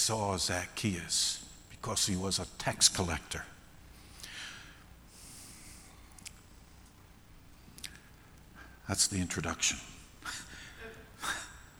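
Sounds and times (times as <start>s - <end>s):
speech: 0.0s - 3.6s, 8.9s - 10.4s
person gasping: 10.2s - 11.6s.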